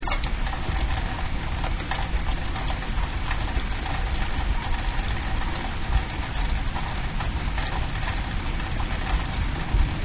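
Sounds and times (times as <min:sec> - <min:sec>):
rain in gutter: 0:00.0 - 0:10.0.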